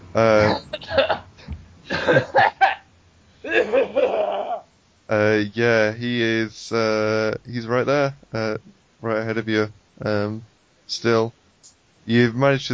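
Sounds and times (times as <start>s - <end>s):
speech: 0.2s - 0.9s, 5.4s - 6.9s, 7.5s - 8.5s, 9.4s - 11.4s, 12.1s - 12.7s
person acting out strained coughing as if coughing up blood: 0.4s - 1.3s, 1.9s - 2.8s, 3.4s - 4.6s.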